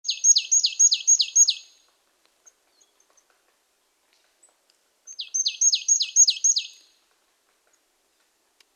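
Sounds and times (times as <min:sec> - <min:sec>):
marsh tit calling: 0:00.0 - 0:01.7, 0:05.1 - 0:06.9.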